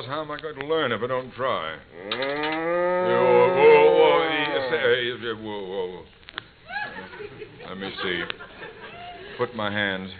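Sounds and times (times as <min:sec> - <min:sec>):
speech: 0:00.0 - 0:06.2, 0:07.2 - 0:08.5, 0:09.4 - 0:10.1
cow mooing in a barn before morning milking: 0:01.9 - 0:04.8
laughter: 0:06.7 - 0:09.5.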